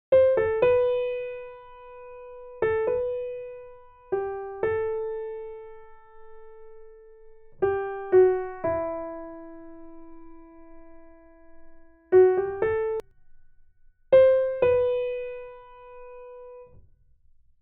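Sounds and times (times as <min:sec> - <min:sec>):
MIDI-sequenced piano keys: 0:00.1 - 0:17.6.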